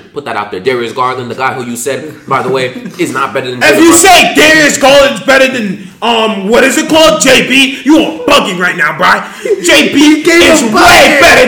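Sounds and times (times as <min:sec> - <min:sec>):
speech: 0:00.2 - 0:11.4
man yelling loudly into microphone with strained distorted voice: 0:03.6 - 0:11.4.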